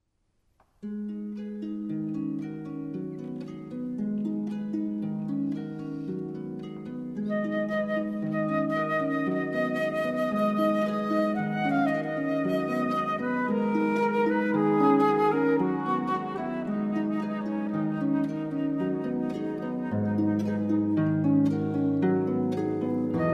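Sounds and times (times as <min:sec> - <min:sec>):
harp: 0:00.8 - 0:23.3
flute: 0:07.2 - 0:23.3.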